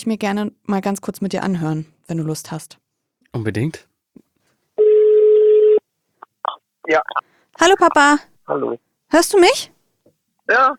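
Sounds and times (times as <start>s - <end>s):
speech: 0.0s - 3.9s, 6.9s - 9.8s, 10.5s - 10.7s
telephone ringback tone: 4.8s - 5.8s.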